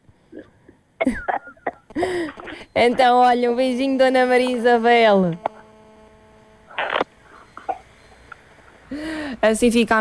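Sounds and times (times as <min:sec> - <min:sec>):
dry coughs from one person: 0:00.3 - 0:02.6
speech: 0:02.0 - 0:05.4, 0:09.4 - 0:09.9.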